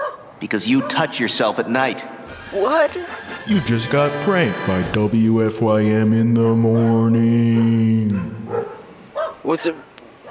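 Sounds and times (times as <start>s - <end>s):
dog barking: 0.0s - 1.3s, 6.8s - 10.2s
speech: 0.4s - 8.7s, 9.4s - 9.8s.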